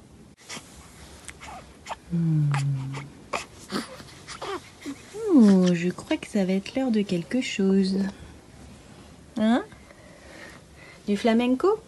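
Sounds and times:
newborn baby whimpering and fussing: 0:00.4 - 0:05.7
speech: 0:02.1 - 0:03.1, 0:05.4 - 0:08.2, 0:09.4 - 0:09.7, 0:11.1 - 0:11.8.

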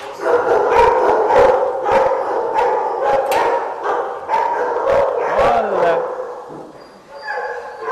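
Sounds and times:
several dogs in kennels barking and howling: 0:00.1 - 0:07.9.

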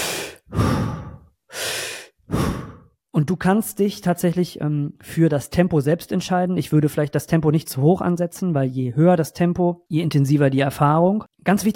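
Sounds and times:
deep breathing in and out in a breathing exercise: 0:00.0 - 0:03.0
speech: 0:03.2 - 0:11.7.

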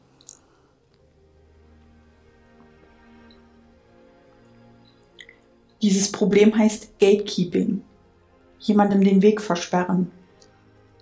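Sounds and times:
person sipping water: 0:00.0 - 0:01.1, 0:04.8 - 0:05.7
speech: 0:05.8 - 0:07.9, 0:08.6 - 0:10.2.

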